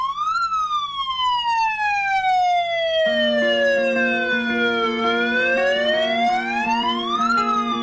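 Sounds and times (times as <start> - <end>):
megaphone siren wailing: 0.0 - 7.8
steady low drone: 3.0 - 7.8.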